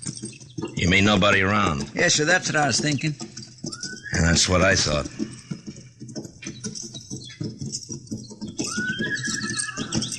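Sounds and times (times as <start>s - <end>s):
horse hoof clatter: 0.0s - 10.1s
speech: 0.8s - 3.3s, 4.1s - 5.2s
horse whinnying: 3.7s - 5.4s, 8.4s - 10.1s.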